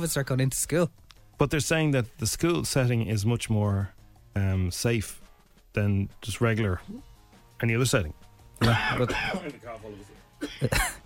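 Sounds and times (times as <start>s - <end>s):
speech: 0.0s - 11.0s
throat clearing: 8.6s - 9.5s
person coughing off-mic: 8.6s - 9.6s, 10.4s - 11.0s.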